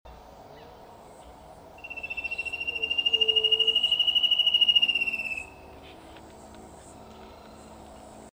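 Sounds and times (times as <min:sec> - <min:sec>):
Spot-backed Antshrike high whistle call in Brazil: 0:01.8 - 0:05.6.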